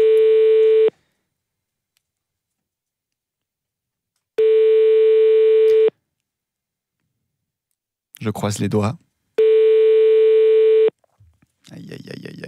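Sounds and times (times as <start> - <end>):
telephone ringback tone: 0.0 - 0.9, 4.4 - 5.9, 9.4 - 10.9
speech: 8.3 - 9.1.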